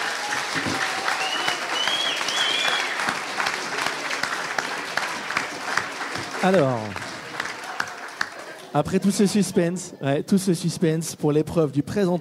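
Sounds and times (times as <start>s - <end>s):
faint whistles and cheers: 0.0s - 3.2s
large audience applause: 0.0s - 9.5s
speech: 6.4s - 7.0s, 8.7s - 12.1s.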